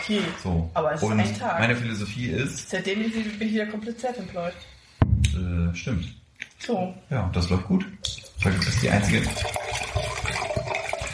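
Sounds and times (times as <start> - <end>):
speech: 0.0 - 9.7
water pouring into a glass: 8.0 - 11.1.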